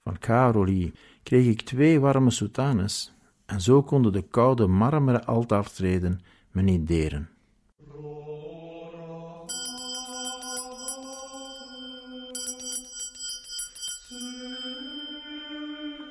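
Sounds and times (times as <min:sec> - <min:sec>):
speech: 0:00.1 - 0:07.3
church bell ringing in a rapid bright jangle: 0:09.5 - 0:15.3.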